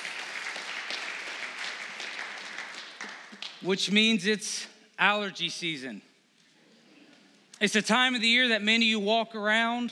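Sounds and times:
audience applause: 0.0 - 3.6
speech: 3.6 - 6.1, 7.6 - 9.9.

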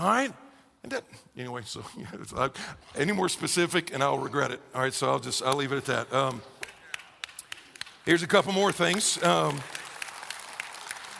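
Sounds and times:
speech: 0.0 - 6.6, 8.0 - 9.8
audience clapping: 5.4 - 11.1.

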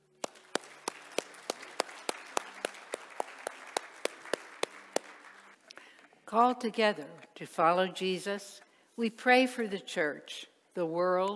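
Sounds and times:
room full of people applauding: 0.2 - 5.6
speech: 6.3 - 11.3.

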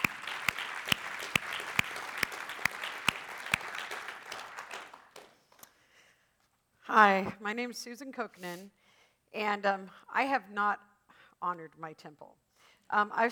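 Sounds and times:
audience applause welcoming a speaker: 0.0 - 5.5
speech: 7.0 - 13.2.

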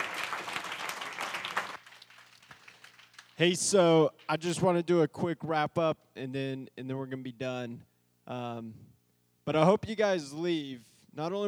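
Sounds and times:
crowd of people clapping for a speaker: 0.0 - 4.4
speech: 3.4 - 8.9, 9.5 - 11.4.

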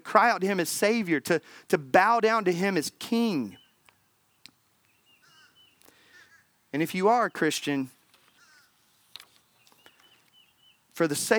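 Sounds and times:
speech: 0.1 - 3.6, 6.7 - 8.0, 11.0 - 11.3
crows cawing outdoors: 5.2 - 6.6, 8.3 - 8.8.

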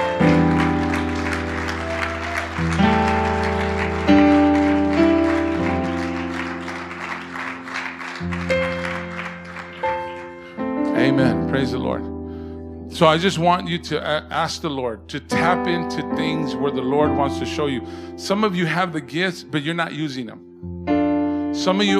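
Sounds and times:
audience applause: 0.0 - 11.0
sustained keyboard or organ chords: 0.0 - 21.9
speech: 13.0 - 20.7, 21.6 - 21.9.

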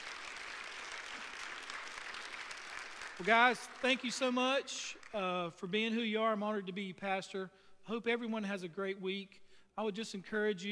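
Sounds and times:
church audience clapping hands: 0.0 - 5.4
speech: 3.2 - 10.7.

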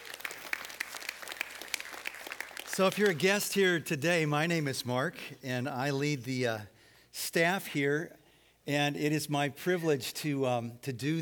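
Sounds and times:
church audience applause: 0.0 - 3.3
speech: 2.8 - 11.1.

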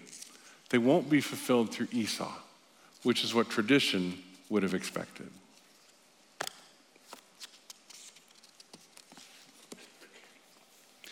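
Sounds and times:
speech: 0.7 - 5.4
book pages being turned: 5.8 - 10.0.

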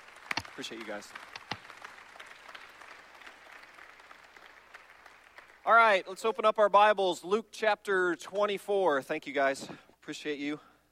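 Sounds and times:
church audience applauding: 0.0 - 6.0
speech: 0.6 - 1.4, 5.6 - 10.7.

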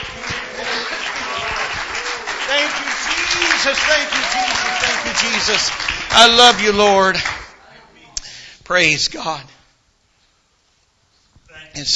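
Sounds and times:
crowd clapping: 0.0 - 7.7
speech: 3.6 - 7.4, 8.7 - 9.6, 11.8 - 11.9.

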